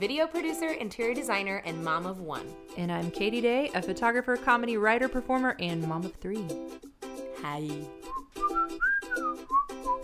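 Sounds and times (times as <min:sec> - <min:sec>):
speech: 0:00.0 - 0:10.0
person whistling a short lively melody: 0:08.0 - 0:10.0.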